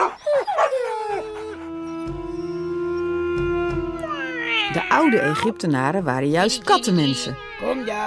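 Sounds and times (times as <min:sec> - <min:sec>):
dog yipping and whimpering barks: 0:00.0 - 0:01.6
humming musical drone: 0:01.0 - 0:08.0
speech: 0:04.7 - 0:08.0.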